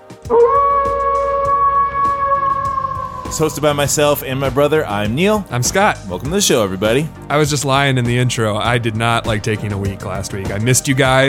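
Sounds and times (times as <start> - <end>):
speech: 0.3 - 0.8, 3.3 - 11.2
wolf howling: 0.3 - 4.6.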